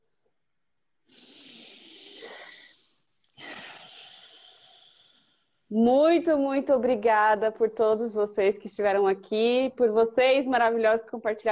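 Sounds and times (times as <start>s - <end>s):
deep breathing in and out: 1.0s - 5.7s
speech: 5.7s - 11.4s.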